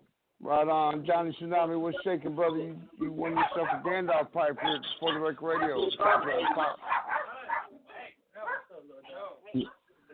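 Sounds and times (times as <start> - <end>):
speech: 0.5 - 7.0, 9.5 - 9.8
Chihuahua barking and yipping: 3.2 - 3.9, 4.6 - 7.8.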